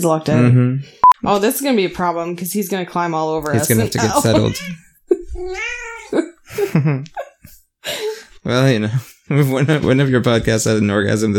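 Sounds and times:
speech: 0:00.0 - 0:04.8, 0:05.4 - 0:07.2, 0:07.8 - 0:11.3
laughter: 0:03.6 - 0:07.6
cat meowing: 0:04.0 - 0:04.8, 0:05.4 - 0:06.2.

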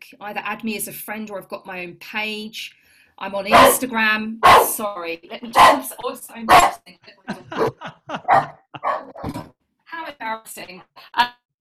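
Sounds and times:
speech: 0:00.1 - 0:11.6
rescue dog barking: 0:03.5 - 0:03.8, 0:04.4 - 0:04.8, 0:05.6 - 0:05.9, 0:06.5 - 0:06.8, 0:07.6 - 0:09.4
laughter: 0:07.0 - 0:09.2.

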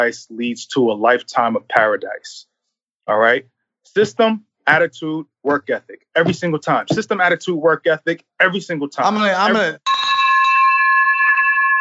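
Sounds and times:
speech: 0:00.0 - 0:02.5, 0:03.1 - 0:10.0
bell struck hard ringing: 0:09.8 - 0:11.7.

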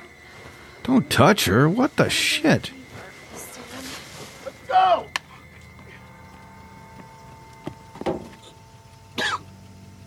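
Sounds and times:
speech: 0:00.9 - 0:02.8
man coughing up blood: 0:09.2 - 0:09.5.

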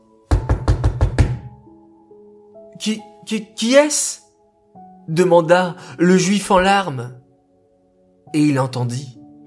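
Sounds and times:
quick knocks on a wooden door: 0:00.3 - 0:01.7
speech: 0:02.8 - 0:04.2, 0:05.1 - 0:07.2, 0:08.3 - 0:09.2.

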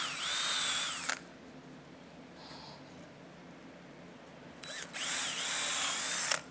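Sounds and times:
power drill drilling holes in wood: 0:00.0 - 0:01.2, 0:04.7 - 0:06.4
faint room noise: 0:00.2 - 0:06.4.

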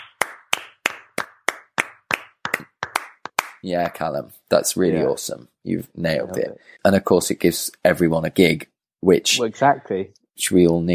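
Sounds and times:
hand clapping: 0:00.0 - 0:04.0
speech: 0:03.6 - 0:10.9.

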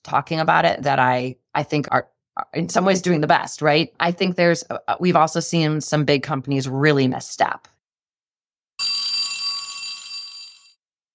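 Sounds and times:
speech: 0:00.1 - 0:07.7
bell ringing: 0:08.8 - 0:10.8.

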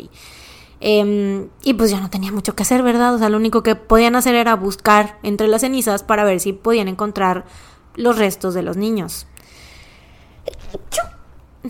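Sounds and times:
speech: 0:00.0 - 0:09.6, 0:10.4 - 0:11.6
person sneezing: 0:10.4 - 0:11.6.

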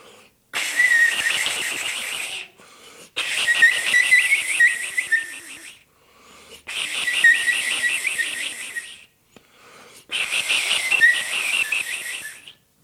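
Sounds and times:
iwabue Japanese stone flute whistling like birdsong: 0:00.6 - 0:02.5, 0:03.2 - 0:05.8, 0:06.7 - 0:09.1, 0:10.1 - 0:12.6.

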